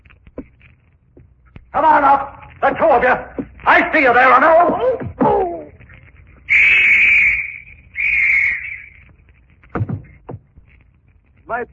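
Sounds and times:
speech: 1.7s - 5.1s
police whistle blasts at a wharf: 6.5s - 9.0s.

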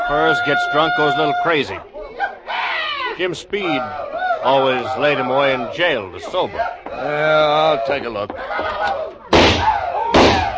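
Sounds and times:
speech: 0.1s - 1.9s, 3.2s - 9.0s
gunshots from a drunken old trapper firing in town: 9.3s - 10.5s.

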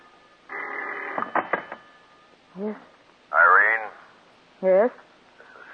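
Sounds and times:
old telephone bell ringing: 0.3s - 2.3s
speech: 2.6s - 2.9s, 4.6s - 5.1s.

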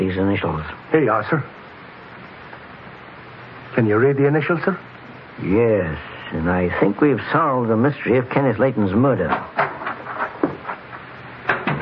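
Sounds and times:
speech: 0.0s - 1.6s, 3.7s - 9.6s
steady hiss: 0.0s - 11.8s
front door closing with a soft thud: 9.2s - 11.8s.

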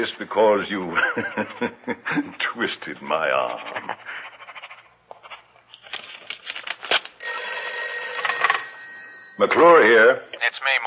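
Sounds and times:
speech: 0.0s - 4.2s, 9.4s - 10.8s
laughter: 0.9s - 2.4s, 3.5s - 4.2s
telephone bell ringing: 7.2s - 10.8s.

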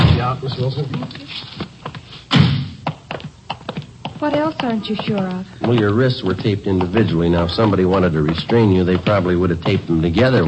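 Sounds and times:
door thump: 0.0s - 0.4s, 2.3s - 2.8s
speech: 0.3s - 1.7s, 4.2s - 10.4s.

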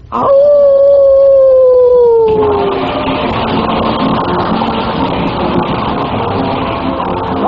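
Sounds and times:
dense wash of noise: 0.0s - 7.4s
speech: 0.1s - 0.7s
dog howling: 0.1s - 2.9s.

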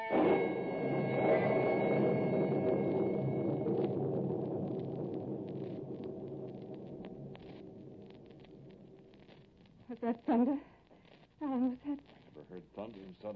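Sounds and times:
thunder rumbling before a storm: 0.1s - 10.4s
speech: 10.0s - 10.7s, 12.6s - 13.3s.

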